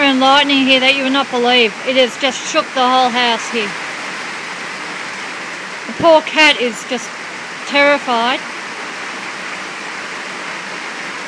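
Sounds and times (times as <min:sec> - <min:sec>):
heavy rain pouring down during Queensland floods: 0:00.0 - 0:11.2
speech: 0:00.2 - 0:03.9, 0:05.9 - 0:08.5.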